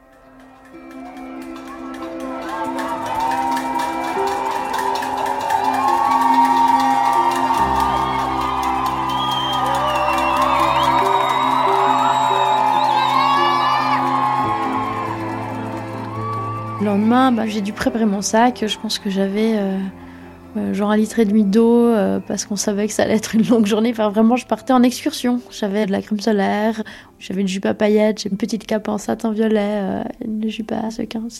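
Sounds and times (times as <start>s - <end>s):
large crowd shouting, whooping and cheering at midnight to launch a strike: 0.0s - 20.6s
speech: 17.1s - 31.3s.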